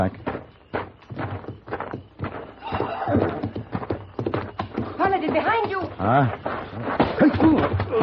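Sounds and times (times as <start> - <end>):
speech: 0.0 - 0.2, 5.2 - 8.0
horse hooves clip-clopping: 0.0 - 8.0
horse whinnying: 2.6 - 3.6.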